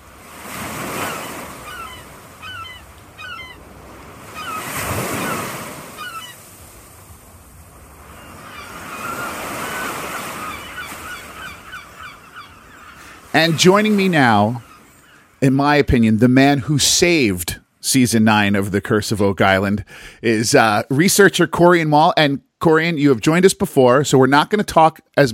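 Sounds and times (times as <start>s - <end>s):
ocean waves washing: 0.0s - 18.5s
seagulls calling: 0.7s - 6.6s, 8.0s - 15.4s
speech: 13.4s - 14.7s, 15.4s - 25.3s.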